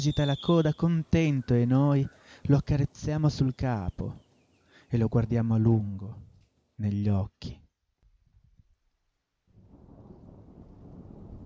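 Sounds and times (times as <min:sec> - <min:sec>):
speech: 0:00.0 - 0:04.2, 0:04.9 - 0:07.6
rushing downpour: 0:09.6 - 0:11.4
thunder rumbling in an approaching thunderstorm: 0:09.6 - 0:11.4.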